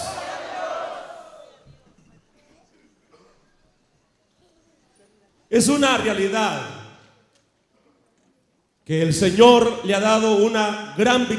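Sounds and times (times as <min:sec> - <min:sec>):
crowd of voices shouting praise together: 0:00.0 - 0:01.6
speech: 0:05.5 - 0:06.8, 0:08.9 - 0:11.3.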